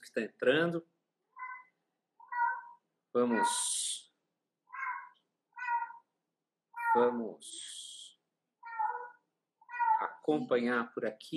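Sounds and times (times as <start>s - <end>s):
speech: 0.0s - 1.0s, 3.1s - 4.0s, 6.9s - 7.9s, 10.0s - 11.3s
female house cat meowing: 1.4s - 3.9s, 4.7s - 6.1s, 6.8s - 7.2s, 8.6s - 10.4s.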